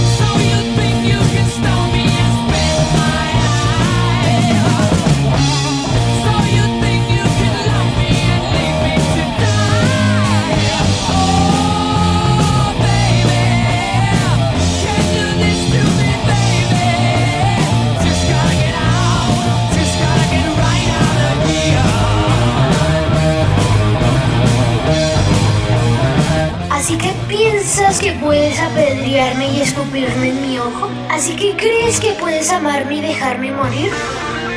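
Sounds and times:
shouted vocal over hard rock: 0:00.0 - 0:26.5
hard rock music with distorted guitars, bass and drums: 0:00.0 - 0:34.5
speech: 0:32.5 - 0:34.2.

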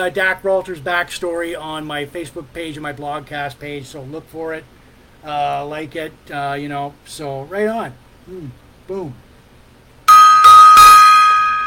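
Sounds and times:
speech: 0:00.0 - 0:09.2
gong struck: 0:10.1 - 0:11.6.

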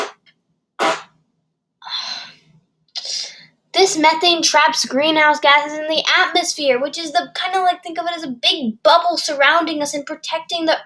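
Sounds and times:
mouth raspberry noises imitating a fart: 0:00.0 - 0:01.2
speech: 0:03.9 - 0:10.8.

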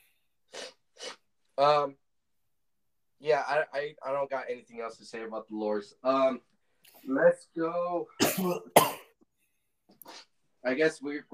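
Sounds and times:
person blowing their nose: 0:00.5 - 0:01.3
speech: 0:01.6 - 0:02.0, 0:03.2 - 0:08.9, 0:10.0 - 0:11.3.

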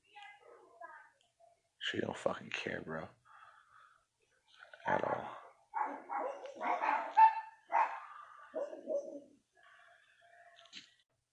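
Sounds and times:
speech: 0:01.9 - 0:03.2, 0:04.8 - 0:05.4
dog next door barking: 0:04.9 - 0:09.3.

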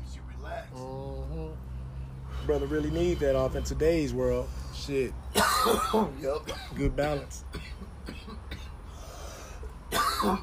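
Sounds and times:
speech: 0:02.5 - 0:07.7, 0:10.2 - 0:10.4
man coughing: 0:05.3 - 0:08.8, 0:09.9 - 0:10.4.

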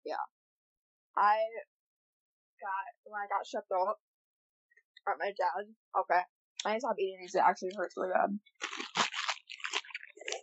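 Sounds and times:
speech: 0:01.2 - 0:01.7, 0:02.6 - 0:04.1, 0:05.0 - 0:08.8
person slurping a drink into the microphone: 0:08.6 - 0:10.4.

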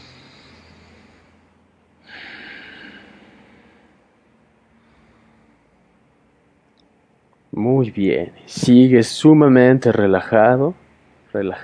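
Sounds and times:
deep breathing through the nose: 0:00.0 - 0:06.4
speech: 0:07.6 - 0:10.8, 0:11.4 - 0:11.6.

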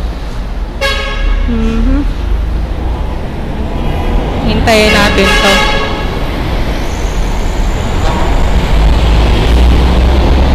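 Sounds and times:
steady rumbling road traffic: 0:00.0 - 0:10.5
truck horn blaring on a highway at night: 0:00.8 - 0:01.5, 0:04.6 - 0:06.3, 0:07.9 - 0:08.6
speech: 0:01.5 - 0:02.2, 0:04.7 - 0:05.7.

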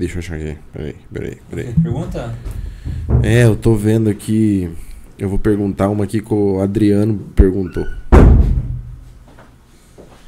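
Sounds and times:
speech: 0:00.0 - 0:02.6, 0:03.2 - 0:08.0
door shoved and banging against its frame: 0:01.8 - 0:03.8, 0:08.0 - 0:09.0.

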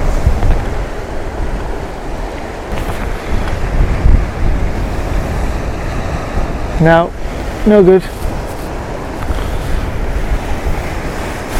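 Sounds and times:
gusty wind buffeting the microphone: 0:00.0 - 0:11.5
surf waves breaking at the base of cliffs: 0:00.0 - 0:11.5
speech: 0:06.8 - 0:08.2.

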